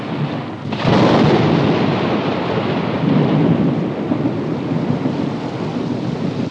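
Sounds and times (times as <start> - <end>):
deep rolling thunderclap during a thunderstorm: 0.0 - 6.4
heavy rain: 0.0 - 6.4.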